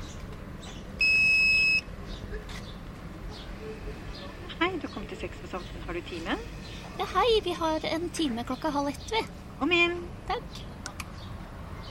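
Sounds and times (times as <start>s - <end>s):
clinic electronic doorbell buzzing: 1.0s - 1.8s
speech: 4.7s - 10.7s.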